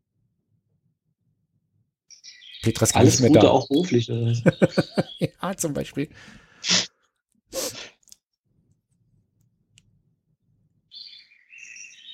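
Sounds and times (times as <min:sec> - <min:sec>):
bird chirping outdoors through an open balcony door: 0:02.1 - 0:05.5, 0:10.9 - 0:12.1
speech: 0:02.6 - 0:06.8
laughter: 0:02.9 - 0:05.5.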